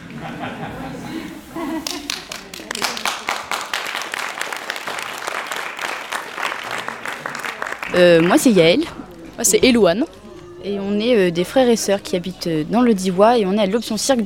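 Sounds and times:
laughter: 0:00.0 - 0:03.3
murmur of voices: 0:00.0 - 0:05.3, 0:05.9 - 0:14.2
chatter: 0:00.4 - 0:14.2
audience applause for unicycle, guitar and juggling act: 0:01.8 - 0:09.2
speech: 0:07.9 - 0:14.2.

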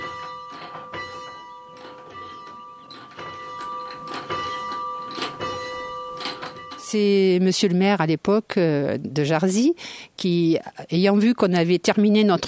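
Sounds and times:
chapel bell ringing: 0:00.0 - 0:07.1
speech: 0:06.9 - 0:12.4.

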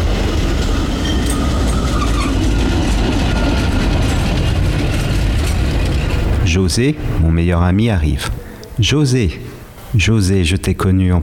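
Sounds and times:
tram rumbling on rails: 0:00.0 - 0:08.9
light squeaks of tram: 0:01.0 - 0:03.8
speech: 0:06.6 - 0:11.2.

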